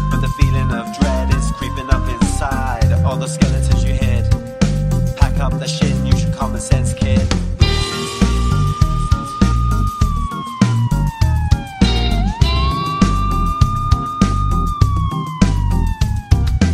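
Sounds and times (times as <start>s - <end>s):
police car siren wailing: 0.0s - 4.0s, 7.6s - 16.7s
person rapping: 0.0s - 4.4s, 5.2s - 7.4s
pounding beat with heavy bass and sharp rhythmic hits: 0.0s - 16.7s.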